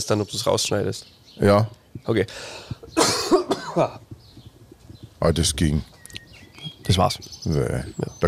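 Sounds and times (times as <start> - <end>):
speech: 0.0 - 4.0, 5.2 - 5.9, 6.9 - 8.2
throat clearing: 2.9 - 4.0
person coughing dryly: 3.0 - 4.0.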